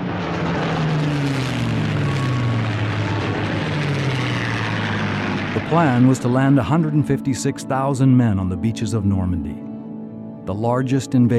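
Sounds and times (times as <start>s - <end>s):
propeller warplane engines roaring overhead: 0.0s - 11.3s
speech: 5.7s - 9.7s, 10.5s - 11.3s.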